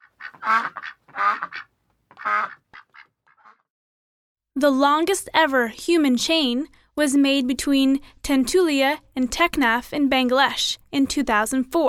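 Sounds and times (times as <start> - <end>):
duck quacking: 0.0 - 3.7
speech: 0.5 - 0.9, 4.6 - 11.8.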